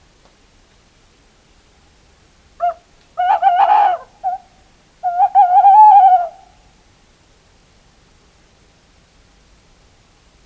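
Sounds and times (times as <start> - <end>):
tawny owl hooting: 2.6 - 6.6.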